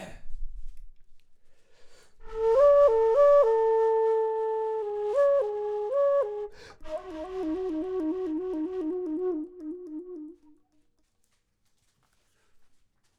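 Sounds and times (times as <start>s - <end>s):
low flute: 2.2s - 10.8s.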